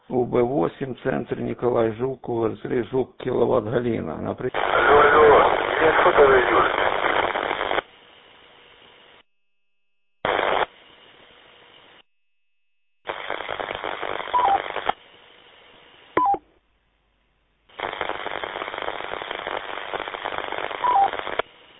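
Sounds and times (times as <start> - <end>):
speech: 0.1 - 6.9
radio tone calling signal blips on a two-way radio channel: 4.6 - 7.8, 12.5 - 15.0, 17.8 - 21.4
hissy bursts of two-way radio static: 4.6 - 7.9, 10.2 - 10.8, 13.0 - 15.0, 17.7 - 21.5.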